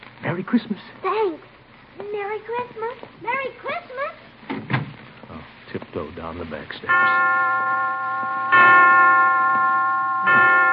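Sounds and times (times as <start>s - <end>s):
speech: 0.4s - 4.2s, 5.7s - 9.1s
resonant clock chimes in a hospital: 6.9s - 10.7s.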